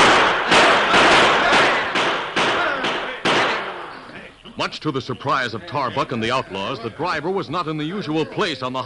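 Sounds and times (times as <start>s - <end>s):
volley of loud sharp gunshots with tails: 0.0s - 4.0s
speech: 4.6s - 8.8s.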